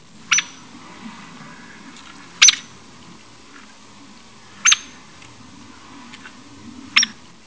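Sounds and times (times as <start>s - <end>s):
hairy woodpecker: 0.3s - 0.6s, 2.4s - 2.7s, 4.6s - 5.0s.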